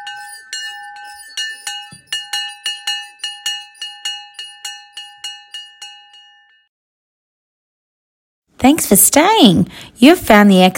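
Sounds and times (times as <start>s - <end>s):
bright bell ringing: 0.0s - 6.7s
speech: 8.6s - 10.7s.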